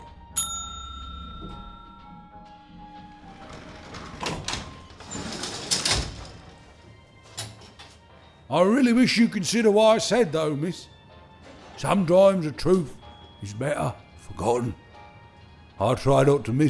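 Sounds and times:
bright bell ding: 0.4s - 3.2s
speech: 8.5s - 11.0s, 11.8s - 14.8s, 15.8s - 16.6s.

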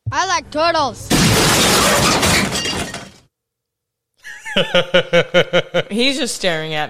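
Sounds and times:
speech: 0.1s - 2.6s, 4.6s - 6.8s
glass-shattering sound effect played from a soundboard: 1.1s - 3.3s
laughter: 4.2s - 6.0s.

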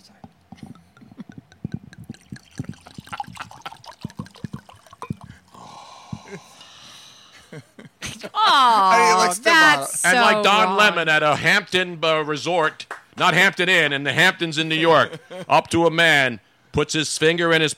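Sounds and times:
wine pouring into a glass: 0.6s - 6.3s
murmured voices: 8.4s - 11.1s
speech: 8.5s - 17.7s.

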